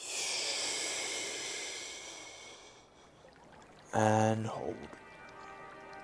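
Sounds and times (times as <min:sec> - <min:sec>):
deep inhale during a guided breathing exercise: 0:00.0 - 0:03.0
speech: 0:03.9 - 0:05.0.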